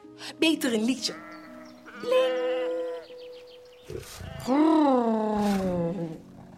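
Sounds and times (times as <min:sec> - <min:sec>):
speech: 0:00.2 - 0:01.3, 0:02.0 - 0:02.8, 0:03.9 - 0:06.2
hungry bear growling as it lumbers toward sheep: 0:03.8 - 0:06.5.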